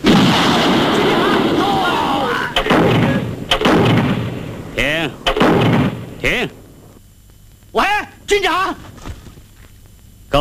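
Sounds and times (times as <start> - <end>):
artillery shelling during an enemy attack on a division: 0.0 - 6.8
sharp loud artillery blasts: 0.0 - 7.0.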